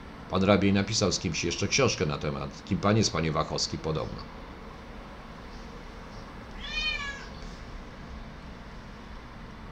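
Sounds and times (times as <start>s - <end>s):
speech: 0.3s - 4.4s
cat meowing: 6.5s - 7.4s.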